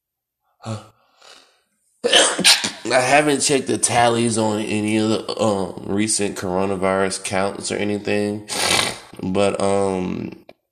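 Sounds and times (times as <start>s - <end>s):
speech: 0.6s - 1.0s, 2.0s - 10.4s
sneeze: 2.0s - 2.8s.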